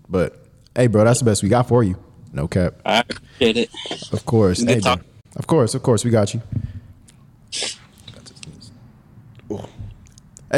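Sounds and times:
speech: 0.1s - 6.7s
sneeze: 7.5s - 8.0s.

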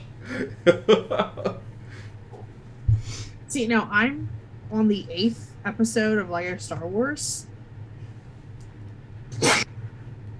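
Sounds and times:
low steady hum: 0.0s - 10.3s
speech: 0.3s - 1.5s, 3.6s - 7.5s
laughter: 0.3s - 1.6s
person sneezing: 9.4s - 9.7s.

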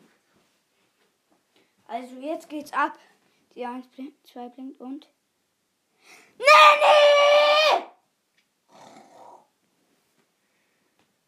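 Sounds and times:
speech: 1.9s - 5.2s, 6.1s - 7.2s
dog snoring loudly: 8.7s - 9.5s.

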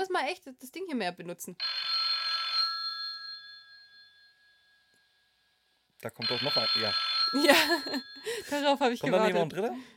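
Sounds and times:
speech: 0.1s - 1.9s, 6.0s - 9.9s
telephone bell ringing: 1.6s - 5.4s, 6.2s - 8.8s
laughter: 7.4s - 8.5s.

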